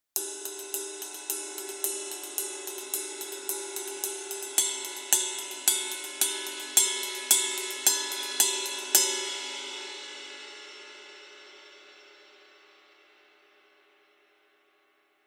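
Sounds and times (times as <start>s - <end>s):
Custom heavy 20-inch ride cymbal: 0.2s - 11.4s.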